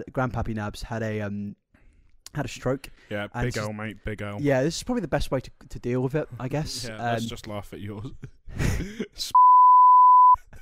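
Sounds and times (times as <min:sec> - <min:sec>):
speech: 0:00.0 - 0:01.6, 0:02.3 - 0:09.4
steady loud censor tone beep: 0:09.4 - 0:10.4.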